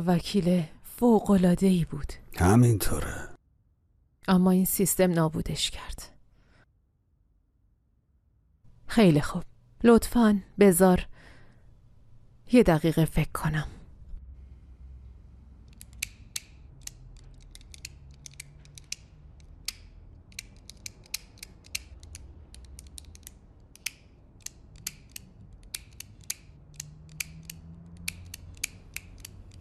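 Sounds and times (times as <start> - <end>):
speech: 0.0 - 3.3, 4.2 - 6.1, 8.9 - 11.1, 12.5 - 13.8
pen clicking: 15.7 - 29.6.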